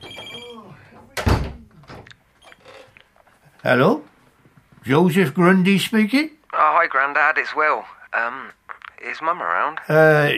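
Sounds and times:
telephone ringing with electronic trill: 0.0s - 0.6s
speech: 3.6s - 4.1s, 4.8s - 10.3s.

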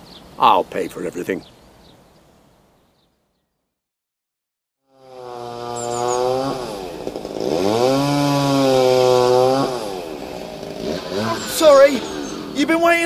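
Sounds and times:
speech: 0.4s - 1.6s, 12.7s - 13.0s
chainsaw idling and revving while cutting wood: 4.9s - 13.0s.

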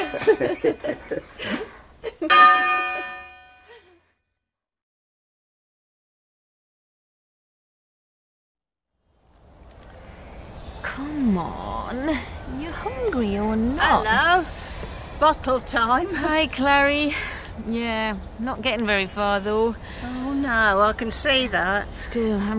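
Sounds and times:
church bell rung by a person: 0.0s - 0.8s, 2.3s - 3.7s
people laughing: 0.0s - 2.3s
faint noise: 0.0s - 4.0s, 9.1s - 22.5s
speech: 0.1s - 1.6s, 15.2s - 22.5s.

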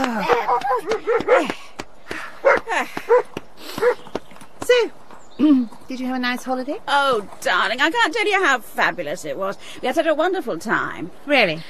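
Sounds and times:
dog barking in short high yaps: 0.4s - 1.5s, 2.4s - 4.0s
speech: 6.0s - 11.6s.

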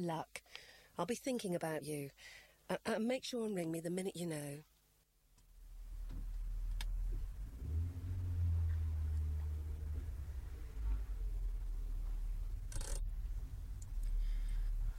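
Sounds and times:
speech: 0.0s - 4.7s
large car engine rumbling while reversing to the curb: 5.5s - 14.9s
sharp clicks: 12.6s - 13.1s.

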